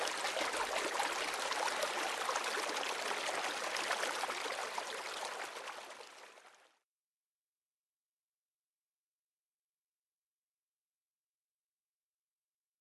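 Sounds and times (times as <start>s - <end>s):
stream water trickling over moss: 0.0s - 6.6s.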